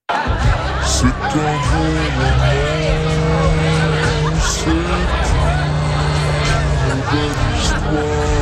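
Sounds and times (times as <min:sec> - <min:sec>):
laughter: 0:00.1 - 0:08.4
slowed-down distorted music: 0:00.2 - 0:08.4
speech: 0:00.9 - 0:02.8, 0:04.6 - 0:05.2, 0:06.9 - 0:08.4.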